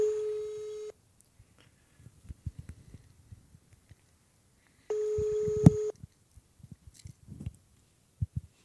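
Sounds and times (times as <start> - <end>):
telephone line tone as a call is placed: 0.0 - 1.0, 4.9 - 6.0
soft clicks and taps from handling the phone: 4.9 - 5.9.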